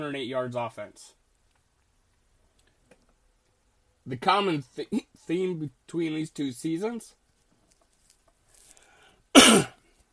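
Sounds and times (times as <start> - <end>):
speech: 0.0 - 1.2, 4.0 - 7.2
person recovering from a cold coughing: 9.4 - 9.8.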